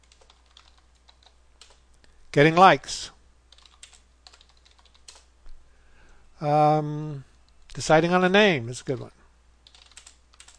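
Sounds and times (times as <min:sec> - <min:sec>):
typing on a computer keyboard: 0:00.0 - 0:01.8, 0:03.5 - 0:05.3, 0:09.6 - 0:10.5
speech: 0:02.3 - 0:03.2, 0:06.4 - 0:09.2.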